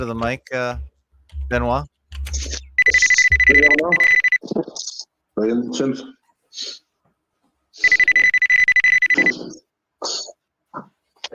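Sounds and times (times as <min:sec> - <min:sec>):
speech: 0:00.0 - 0:00.9, 0:01.5 - 0:06.8
bright steady electronic phone ringtone: 0:02.4 - 0:04.4, 0:07.8 - 0:09.5.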